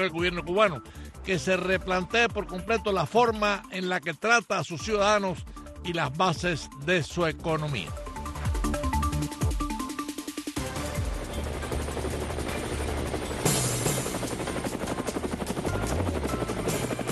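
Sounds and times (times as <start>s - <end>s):
helicopter rotor blades chopping overhead: 0.0s - 3.7s, 7.4s - 17.1s
speech: 0.0s - 8.0s.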